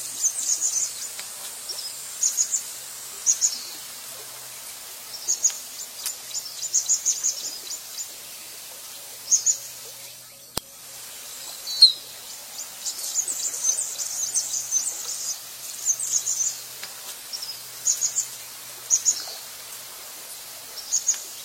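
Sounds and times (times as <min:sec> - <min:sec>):
Anna's hummingbird buzzy high-pitched chatter song: 0:00.0 - 0:21.4.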